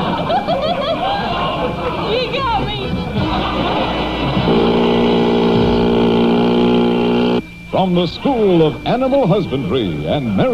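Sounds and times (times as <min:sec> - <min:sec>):
laughter: 0:00.0 - 0:06.6
motorboat engine droning: 0:01.6 - 0:10.5
speech: 0:07.8 - 0:10.5.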